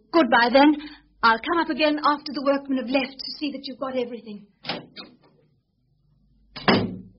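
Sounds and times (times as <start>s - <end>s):
speech: 0.2s - 4.8s
door closing with a solid thud: 6.6s - 7.1s.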